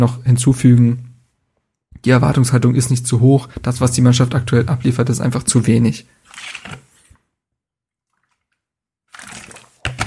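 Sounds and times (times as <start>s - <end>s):
speech: 0.0s - 1.1s, 2.0s - 6.9s
sipping and swallowing: 8.1s - 10.0s.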